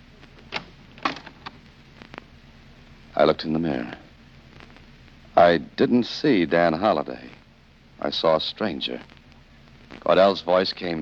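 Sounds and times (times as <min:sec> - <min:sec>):
closet door latch and hinges clicking: 0:00.5 - 0:01.6
closet door opening: 0:00.5 - 0:01.6
speech: 0:03.2 - 0:04.0, 0:05.4 - 0:07.4, 0:08.0 - 0:09.1, 0:10.0 - 0:10.9.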